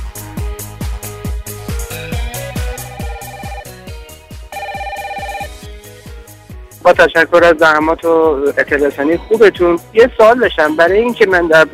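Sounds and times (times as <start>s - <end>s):
electronic telephone ringtone melody over thumping beats: 2.4s - 3.8s, 4.5s - 5.7s
speech: 6.9s - 11.7s.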